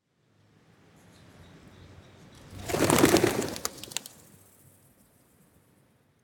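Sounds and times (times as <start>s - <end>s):
pigeons taking off: 2.5s - 4.4s.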